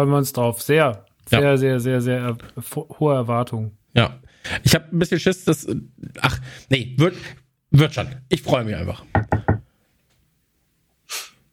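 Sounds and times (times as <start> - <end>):
speech: 0.0 - 9.3
quick firm knocks: 9.1 - 9.7
short breathy hiss: 11.0 - 11.5.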